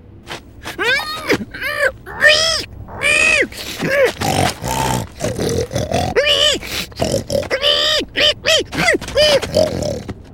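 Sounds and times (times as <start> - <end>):
person imitating pig squeals, grunts and snorts: 0.6 - 10.2.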